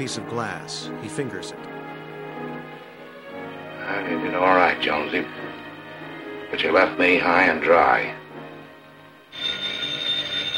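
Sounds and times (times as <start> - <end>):
speech: 0.0 - 1.7, 3.9 - 5.6, 6.5 - 8.2
telephone bell ringing: 9.3 - 10.5.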